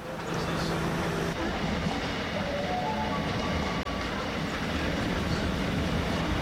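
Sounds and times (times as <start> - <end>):
train rumbling along the tracks heard from inside a carriage: 0.0 - 6.4.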